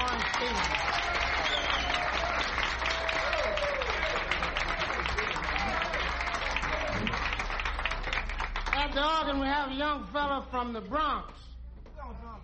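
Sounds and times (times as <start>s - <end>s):
audience applauding a guitarist: 0.0s - 9.5s
speech: 9.0s - 11.5s.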